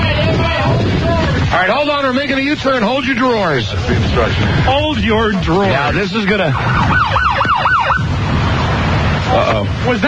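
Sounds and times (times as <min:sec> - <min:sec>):
low road and engine rumble: 0:00.0 - 0:10.0
speech: 0:02.1 - 0:07.4, 0:09.3 - 0:10.0
police car siren signalling a car to pull over: 0:05.7 - 0:08.2.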